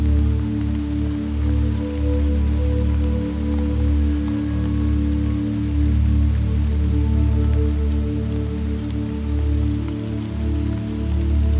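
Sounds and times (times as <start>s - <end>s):
soft even rain: 0.0s - 11.5s.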